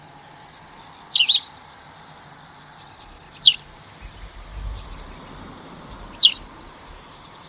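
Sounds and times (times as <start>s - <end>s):
white wagtail giving sharp high descending call notes: 2.9s - 7.2s
soft low rumbling: 2.9s - 7.4s.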